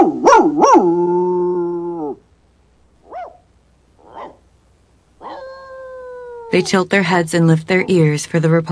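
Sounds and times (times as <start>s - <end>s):
dog yelping: 0.0s - 1.0s, 3.0s - 4.5s, 5.2s - 6.7s
dog barking and howling: 0.0s - 2.2s, 3.0s - 4.5s, 5.2s - 6.8s
speech: 6.5s - 8.6s.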